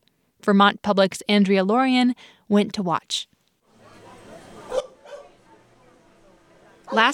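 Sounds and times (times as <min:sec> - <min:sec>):
speech: 0:00.4 - 0:03.3, 0:06.9 - 0:07.1
crowd murmur and chatter: 0:03.7 - 0:07.1
dogs barking at a gathering at a sports center: 0:03.8 - 0:05.9, 0:06.6 - 0:07.1
dogs yipping: 0:03.9 - 0:05.4, 0:06.8 - 0:07.1.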